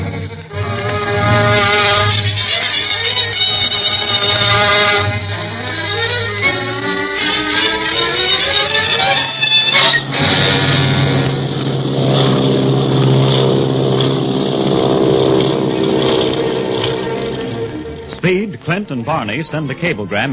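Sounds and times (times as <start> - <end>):
propeller engine of a Clipper airplane in flight droning: 0.0 - 20.3
speech: 19.2 - 20.3.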